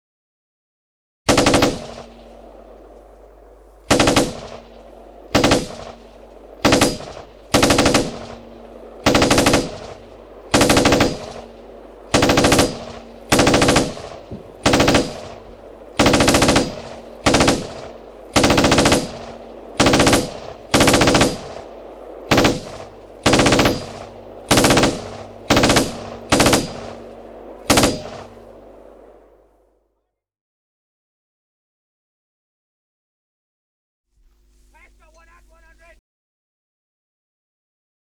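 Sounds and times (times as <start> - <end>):
submachine gun for tank target ranging firing: 1.3 - 29.2.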